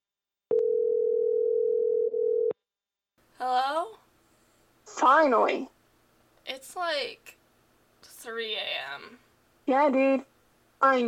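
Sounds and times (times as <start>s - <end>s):
phone call ringing tone: 0.5s - 2.6s
speech: 5.0s - 5.7s, 6.5s - 7.4s, 8.2s - 11.0s.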